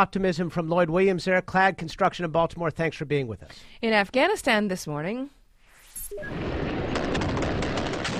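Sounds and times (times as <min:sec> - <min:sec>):
speech: 0:00.0 - 0:05.4, 0:06.1 - 0:06.8
gunfire in a gun battle between Taliban fighters and security forces in Afghanistan: 0:06.3 - 0:08.1.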